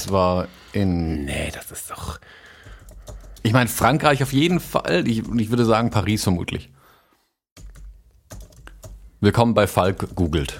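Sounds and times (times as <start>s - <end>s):
speech: 0.0s - 2.4s, 3.4s - 6.8s, 9.2s - 10.5s
rapid typing on a loose rattly computer keyboard: 2.6s - 6.0s, 7.6s - 9.0s.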